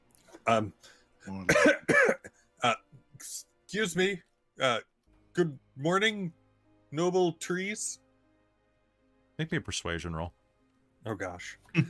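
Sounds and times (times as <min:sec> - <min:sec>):
speech: 0:00.5 - 0:08.0, 0:09.4 - 0:10.4, 0:11.0 - 0:11.8
player clearing throat: 0:01.4 - 0:02.4
player coughing: 0:01.4 - 0:02.4.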